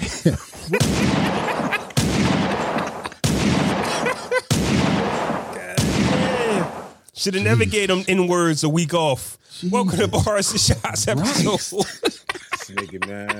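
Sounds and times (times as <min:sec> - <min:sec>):
laughter: 0:00.0 - 0:03.2, 0:03.8 - 0:04.5, 0:09.8 - 0:13.3
speech: 0:00.2 - 0:01.1, 0:07.2 - 0:13.3
loud gunshot sound effects with tails: 0:00.8 - 0:07.0.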